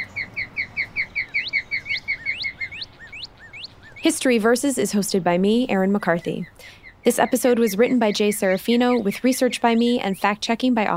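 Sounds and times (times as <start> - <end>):
bird chirping and whistling outdoors: 0.0 - 4.2, 6.4 - 10.3
speech: 4.0 - 10.9.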